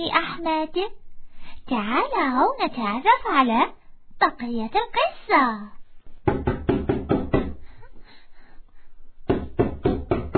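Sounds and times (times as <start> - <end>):
speech: 0.0 - 1.0, 1.6 - 6.4
father knocking loudly on a door: 6.2 - 7.6, 9.3 - 10.3.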